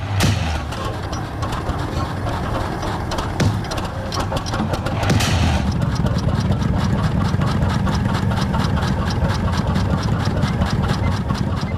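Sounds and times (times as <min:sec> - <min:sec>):
loud bangs: 0:00.0 - 0:06.0
teleporter machine sputtering and whirring: 0:00.0 - 0:11.7.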